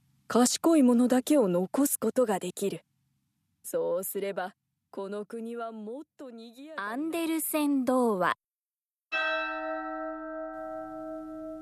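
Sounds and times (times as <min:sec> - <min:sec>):
speech: 0:00.3 - 0:02.9, 0:03.6 - 0:08.4
single bell strike ringing: 0:09.1 - 0:11.6.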